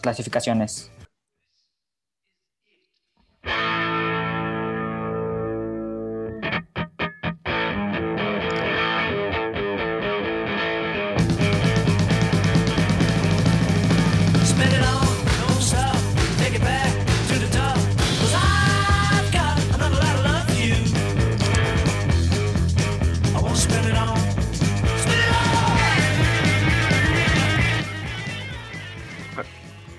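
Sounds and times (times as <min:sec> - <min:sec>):
speech: 0:00.0 - 0:01.0
heavily distorted guitars: 0:03.4 - 0:29.9
rock song played from a record: 0:03.5 - 0:29.9
steady drums: 0:11.2 - 0:29.9.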